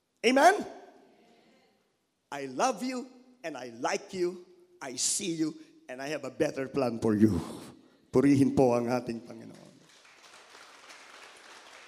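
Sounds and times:
speech: 0.2s - 0.8s, 2.3s - 9.6s
audience clapping in praise: 9.8s - 11.8s.

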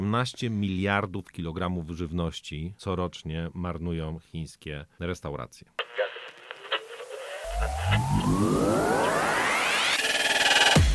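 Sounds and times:
speech: 0.1s - 6.0s, 7.6s - 9.0s
crackling radio static and interference: 5.8s - 10.7s
warbling electronic tones sweeping upward in pitch: 7.1s - 10.8s.

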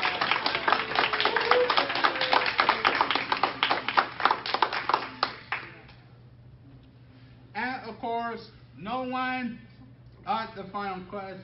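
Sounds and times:
audience applause: 0.0s - 5.8s
speech: 8.3s - 9.7s, 10.3s - 11.4s.

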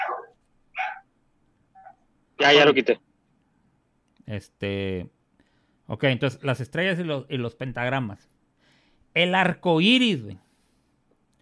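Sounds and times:
dog barking: 0.0s - 1.1s
speech: 2.4s - 3.1s, 4.3s - 5.2s, 5.9s - 8.3s, 9.2s - 10.4s.

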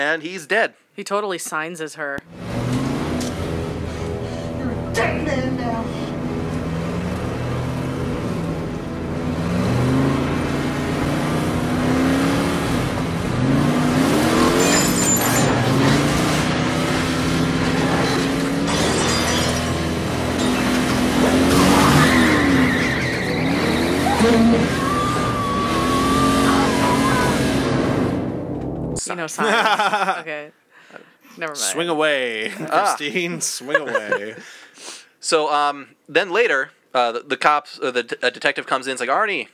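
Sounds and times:
speech: 0.0s - 2.8s, 5.0s - 6.0s, 29.1s - 30.6s, 31.4s - 39.5s
car engine roaring and revving: 2.3s - 4.9s, 5.6s - 18.8s, 19.8s - 28.6s
tires squealing and skidding: 9.3s - 28.2s
laughter: 29.3s - 30.4s, 31.6s - 34.6s.

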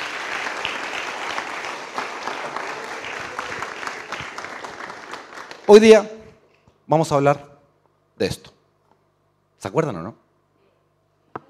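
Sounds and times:
crowd applauding: 0.0s - 6.1s
speech: 5.7s - 6.1s, 6.9s - 7.5s, 8.2s - 8.6s, 9.6s - 10.2s.

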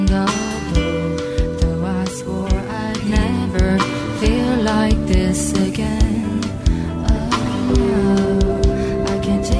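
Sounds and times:
driving percussion: 0.0s - 9.5s
female singer with stacked layered vocal harmonies: 0.0s - 9.5s
dense instrumentation: 2.5s - 9.5s.

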